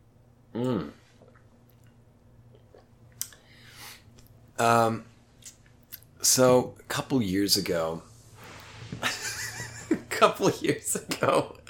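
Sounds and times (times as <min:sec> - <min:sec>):
person gulping water: 0:00.6 - 0:03.4
speech: 0:04.6 - 0:05.1, 0:06.4 - 0:08.1, 0:10.2 - 0:11.6.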